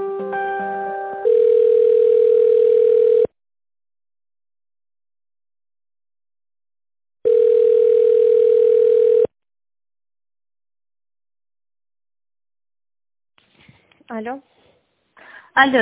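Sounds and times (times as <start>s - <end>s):
telephone line tone while a call is transferred: 1.2s - 3.3s, 7.2s - 9.3s
speech: 14.2s - 14.5s, 15.6s - 15.8s.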